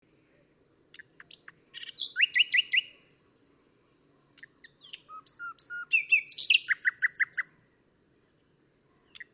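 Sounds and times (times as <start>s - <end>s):
common nightingale Luscinia megarhynchos singing: 0.9s - 9.3s.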